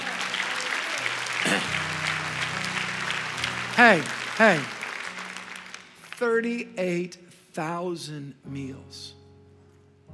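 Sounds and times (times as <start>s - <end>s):
crowd applauding: 0.0s - 7.1s
speech: 3.8s - 4.8s, 6.2s - 9.2s.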